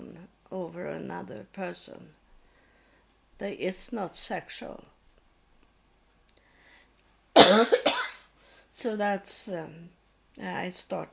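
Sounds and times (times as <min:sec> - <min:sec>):
speech: 0:00.7 - 0:02.2, 0:03.4 - 0:05.0, 0:07.5 - 0:07.8, 0:08.8 - 0:11.1
person coughing from a tickling throat: 0:07.4 - 0:08.2.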